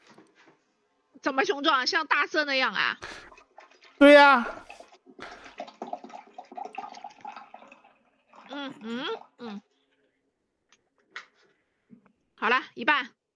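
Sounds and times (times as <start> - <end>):
speech: 1.2 - 3.2, 4.0 - 4.6, 8.7 - 9.6, 12.8 - 13.2
person gulping and slurping water: 3.0 - 9.8
voiced sounds: 4.0 - 4.7.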